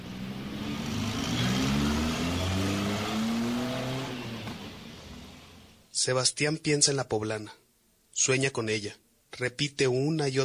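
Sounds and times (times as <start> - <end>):
large bus engine revving and accelerating: 0.0 - 5.9
speech: 6.0 - 7.6, 8.2 - 10.4.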